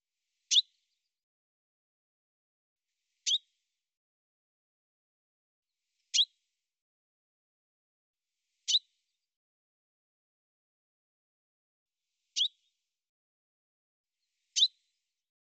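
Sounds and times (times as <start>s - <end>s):
bird chirps: 0.5s - 0.9s, 3.2s - 3.6s, 6.1s - 6.4s, 8.6s - 9.2s, 12.3s - 12.7s, 14.4s - 14.9s.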